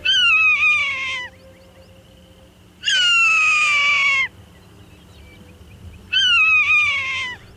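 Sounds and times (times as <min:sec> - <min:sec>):
Swainson's Hawk screaming: 0:00.0 - 0:01.3, 0:02.8 - 0:04.3, 0:06.1 - 0:07.5.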